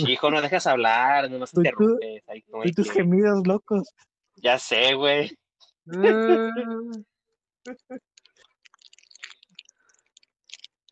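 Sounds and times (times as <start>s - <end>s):
speech: 0.0s - 8.1s
person chewing and eating: 7.7s - 10.9s.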